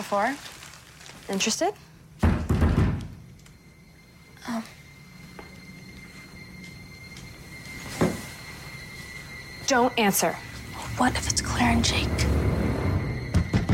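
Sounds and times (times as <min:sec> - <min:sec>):
speech: 0:00.0 - 0:00.5, 0:01.3 - 0:01.9, 0:04.4 - 0:04.8, 0:09.7 - 0:12.5
faint hum: 0:00.4 - 0:13.7
dull knocks on a door: 0:02.2 - 0:03.0.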